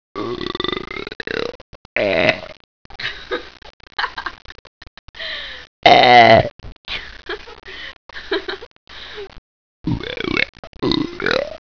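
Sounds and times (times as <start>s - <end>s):
burps: 0.2s - 2.7s, 5.8s - 6.6s, 9.8s - 11.6s.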